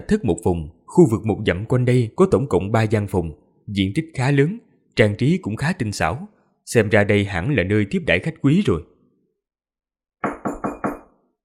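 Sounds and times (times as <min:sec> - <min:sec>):
speech: 0:00.0 - 0:08.9
knocking on a door: 0:10.2 - 0:11.2.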